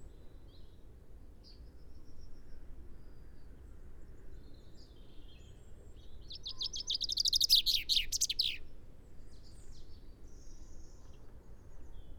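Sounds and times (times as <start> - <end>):
faint high bird calls: 6.4 - 8.6
Common chaffinch singing, Fringilla coelebs: 6.6 - 8.6.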